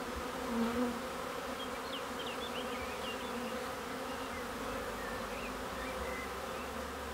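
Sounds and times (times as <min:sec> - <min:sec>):
many bees buzzing around woven straw hive baskets: 0:00.0 - 0:07.1
faint birds chirping: 0:01.4 - 0:07.0.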